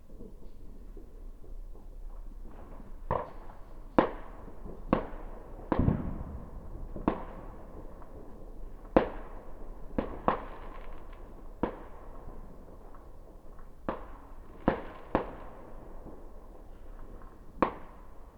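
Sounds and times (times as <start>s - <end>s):
fireworks in Kaarina: 0.0s - 18.3s.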